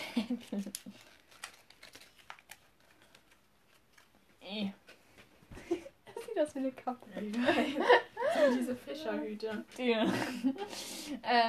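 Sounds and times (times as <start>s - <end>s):
speech: 0.2s - 1.1s, 4.5s - 4.8s, 6.4s - 11.4s
crumpled paper note crinkling and rustling while handled: 0.2s - 4.4s
laughter: 7.2s - 8.8s, 9.9s - 10.7s.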